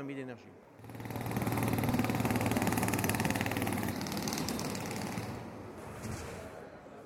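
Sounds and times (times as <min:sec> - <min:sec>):
small engine of a City Joule urban concept prototype car running: 0:00.8 - 0:05.6.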